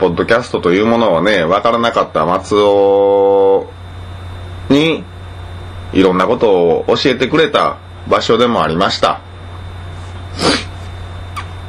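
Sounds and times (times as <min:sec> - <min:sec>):
speech: 0:00.0 - 0:03.8, 0:04.7 - 0:05.1, 0:05.9 - 0:09.3, 0:10.4 - 0:10.6
low steady hum: 0:00.0 - 0:11.6
breathy sniffling through a stuffy nose from hay fever: 0:10.0 - 0:10.9.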